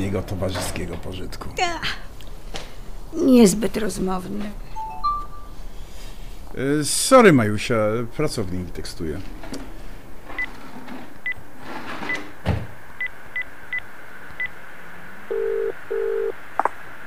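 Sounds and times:
speech: 0.0s - 2.1s, 3.1s - 4.6s, 6.5s - 9.7s
faint hum: 0.0s - 17.0s
ringback-style tones: 4.7s - 5.6s.

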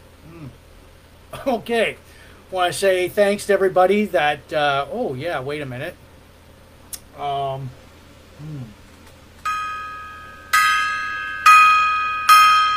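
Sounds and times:
speech: 1.4s - 6.0s, 7.2s - 7.8s, 8.4s - 8.8s
gong strikes with a bright shimmering sustain: 9.5s - 12.7s.

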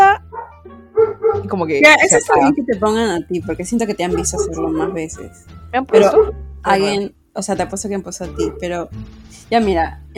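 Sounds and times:
dogs barking: 0.3s - 2.5s, 4.1s - 6.4s, 8.4s - 8.8s
speech: 1.5s - 10.1s.

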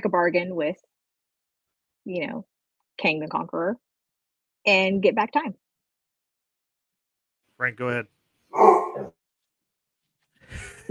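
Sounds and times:
speech: 0.1s - 1.0s, 2.0s - 3.9s, 4.6s - 5.6s, 7.6s - 9.2s, 10.5s - 10.8s
dog barking: 8.5s - 9.1s.

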